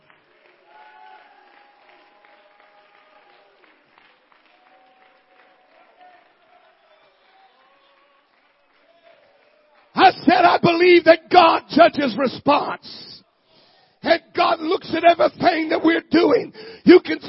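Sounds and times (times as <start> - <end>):
large crowd clapping: 0.0 - 11.0
many voices shouting and cheering: 10.0 - 13.2, 14.0 - 17.2
speech: 10.2 - 13.0, 14.0 - 17.2.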